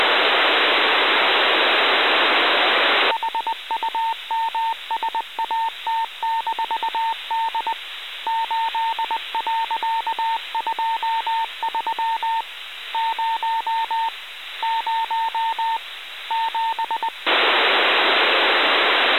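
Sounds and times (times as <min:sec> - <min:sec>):
HumSat D radio signal on 437162kHz: 0:00.0 - 0:12.4, 0:13.0 - 0:19.1.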